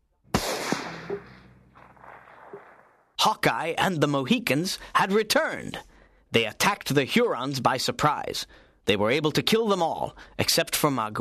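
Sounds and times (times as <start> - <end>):
rifle shot: 0.3 - 3.2
speech: 3.2 - 11.1.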